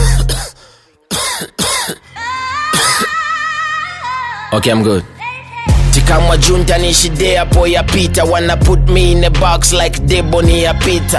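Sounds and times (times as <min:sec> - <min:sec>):
person coughing harshly: 0:00.0 - 0:02.1, 0:02.7 - 0:03.2
steady tonal musical backdrop: 0:00.0 - 0:11.1
speech: 0:04.5 - 0:05.2, 0:06.0 - 0:11.1.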